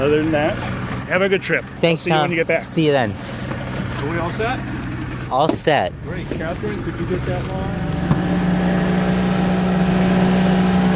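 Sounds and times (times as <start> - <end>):
speech: 0.0 - 7.9
motorboat engine droning as the boat heads out: 0.0 - 10.9.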